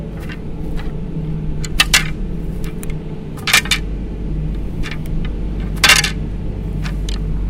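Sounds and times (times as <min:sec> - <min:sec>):
arrows clanking: 0:00.2 - 0:01.0, 0:01.6 - 0:07.4.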